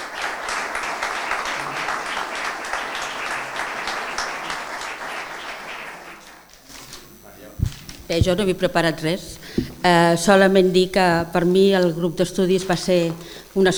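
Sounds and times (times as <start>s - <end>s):
audience applause: 0.0s - 6.4s
speech: 8.1s - 13.7s.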